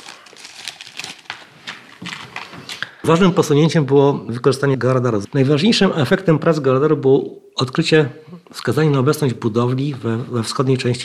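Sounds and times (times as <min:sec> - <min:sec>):
plastic foil bag crinkling as taken out of a pocket: 0:00.0 - 0:02.9
speech: 0:03.0 - 0:11.0.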